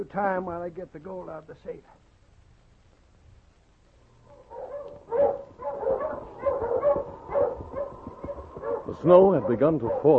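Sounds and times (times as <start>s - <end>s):
speech: 0.0s - 2.1s, 8.9s - 10.1s
dog barking sharp tonal barks: 4.3s - 10.1s.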